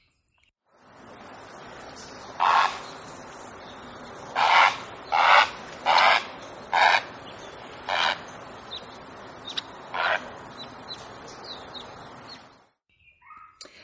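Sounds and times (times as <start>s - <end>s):
steady outdoor noise: 0.1s - 13.8s
great egret giving harsh raspy croaks: 2.3s - 12.5s.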